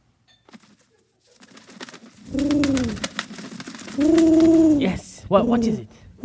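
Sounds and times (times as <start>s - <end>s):
soft rustling: 0.0s - 6.2s
scattered clicks: 0.5s - 5.0s
carrier pigeon giving a low throaty coo: 2.1s - 6.2s
speech: 4.8s - 6.0s.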